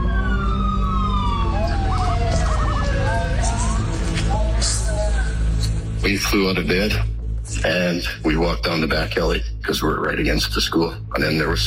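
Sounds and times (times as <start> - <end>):
emergency vehicle sirens wailing and yelping: 0.0 - 6.0
dense traffic rumble: 0.0 - 11.6
speech: 6.3 - 11.6.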